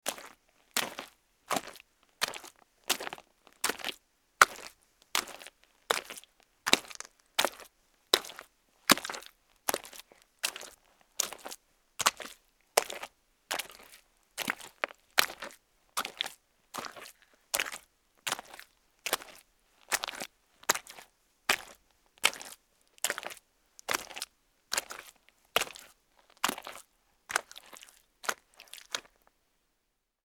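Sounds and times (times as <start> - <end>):
footsteps walking in mud: 0.1 - 29.2.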